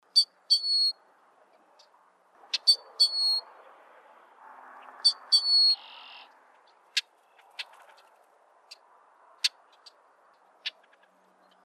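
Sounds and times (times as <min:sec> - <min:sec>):
Brewer's blackbird calling: 0:00.1 - 0:01.0, 0:02.5 - 0:03.4, 0:05.0 - 0:08.1.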